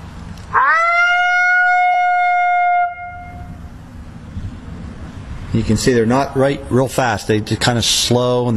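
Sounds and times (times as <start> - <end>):
person imitating a female lonesome howl with the voice: 0.5 - 3.4
speech: 5.6 - 8.5.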